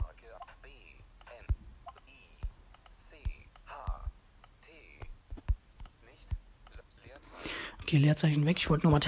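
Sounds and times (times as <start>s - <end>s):
keyboard typing a word into a search field: 1.2s - 7.4s
speech: 7.9s - 9.0s.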